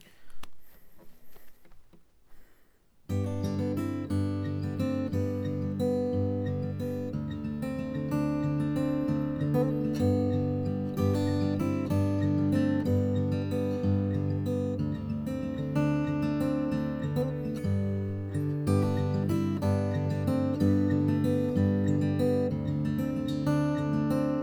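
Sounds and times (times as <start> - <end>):
acoustic guitar arpeggio played high on the neck: 3.1 - 24.4.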